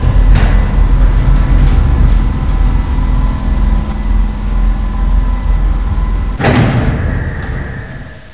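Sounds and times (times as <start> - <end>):
heavy door: 0.0 - 8.3.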